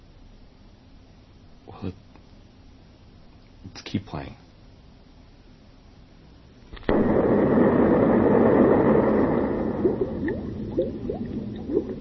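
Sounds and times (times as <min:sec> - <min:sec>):
speech: 0:01.8 - 0:02.1, 0:03.7 - 0:04.4
sudden loud burst: 0:06.8 - 0:11.7
bubbles gurgling with blips and pops: 0:06.9 - 0:11.9.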